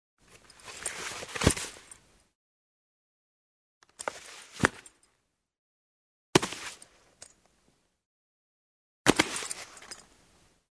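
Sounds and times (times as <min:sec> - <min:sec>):
motorcycle helmet put on and taken off: 0:00.3 - 0:02.0, 0:03.8 - 0:05.1, 0:06.4 - 0:07.0, 0:09.1 - 0:10.1.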